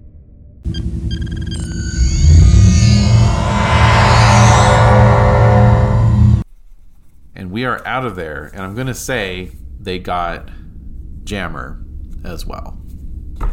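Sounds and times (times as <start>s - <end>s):
sci-fi transporter beam sound effect: 0.7s - 6.4s
speech: 7.6s - 10.6s, 11.2s - 12.8s.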